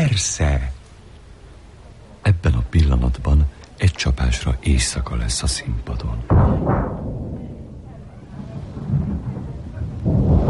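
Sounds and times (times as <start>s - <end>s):
speech: 0.1s - 0.8s, 2.4s - 7.2s
deep rumbling thunder: 6.2s - 10.4s.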